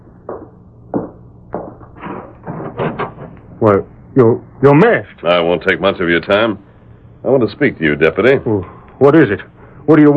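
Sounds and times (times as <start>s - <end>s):
wooden knocks, clunks and rattling handling noises of a door: 0.3s - 3.5s
house door being opened: 2.0s - 3.6s
speech: 3.6s - 10.1s.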